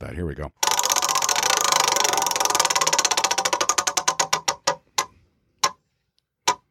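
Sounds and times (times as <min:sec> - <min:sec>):
prize wheel spinning and clicking: 0:00.6 - 0:05.1.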